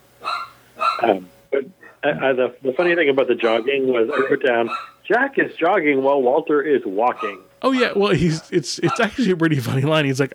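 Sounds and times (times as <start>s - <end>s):
dog barking at a vacuum cleaner: 0.2s - 1.2s, 3.4s - 5.0s, 7.1s - 7.5s
speech: 1.0s - 10.3s
laughter: 7.8s - 10.3s.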